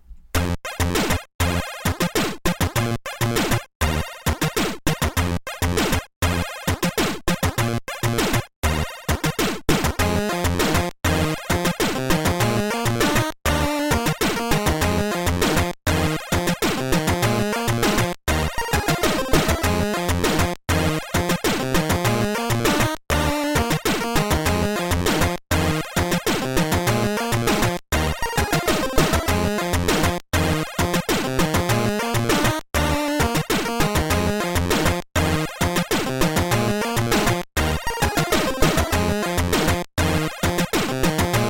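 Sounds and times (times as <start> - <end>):
Game Boy-style chiptune cutscene music with square-wave melodies: 0.4 - 41.4.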